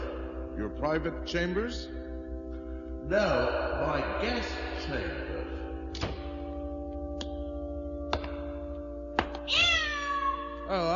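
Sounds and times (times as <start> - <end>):
low steady hum: 0.0 - 9.2
speech: 0.7 - 2.0, 3.1 - 5.4, 10.7 - 10.9
cat yowling after its tail is stepped on: 9.5 - 10.7.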